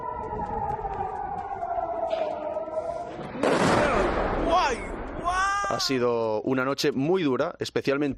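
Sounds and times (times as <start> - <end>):
wailing air raid siren in Tel Aviv, Israel: 0.0 - 4.2
speech: 0.2 - 0.8, 5.7 - 8.1
explosions of missile cluster warheads striking in Tel Aviv, Israel: 2.0 - 5.7.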